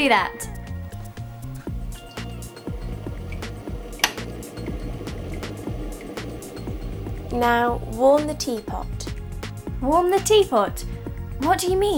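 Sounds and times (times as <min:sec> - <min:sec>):
speech: 0:00.0 - 0:00.6, 0:07.3 - 0:09.0, 0:09.8 - 0:11.9
water pouring into a kettle: 0:01.7 - 0:09.2.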